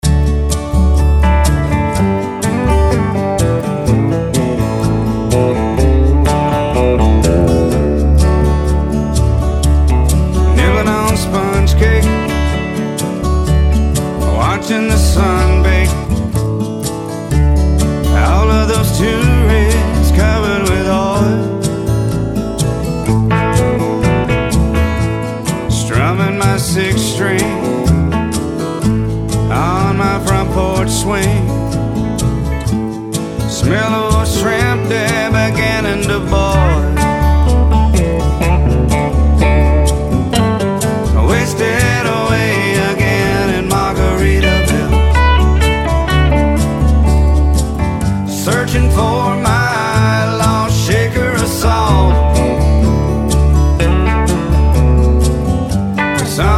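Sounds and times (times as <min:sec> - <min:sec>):
solo guitar: 0:00.0 - 0:56.5.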